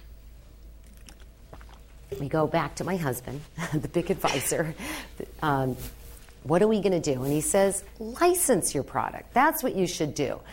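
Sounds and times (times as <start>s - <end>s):
person sipping and swallowing water: 0.8s - 2.2s
speech: 2.1s - 10.5s.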